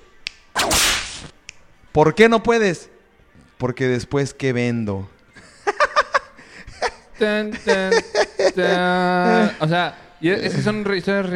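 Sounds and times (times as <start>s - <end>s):
small crisp snaps: 0.2s - 1.6s
whip crack: 0.5s - 1.4s
speech: 2.0s - 3.0s, 3.6s - 5.2s, 7.2s - 11.3s
laughter: 5.4s - 9.8s.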